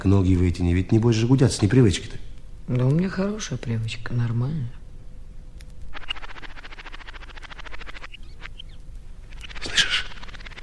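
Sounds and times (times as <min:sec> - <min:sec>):
speech: 0:00.0 - 0:04.8
birds calling: 0:05.9 - 0:10.6
magpies chattering: 0:05.9 - 0:10.6.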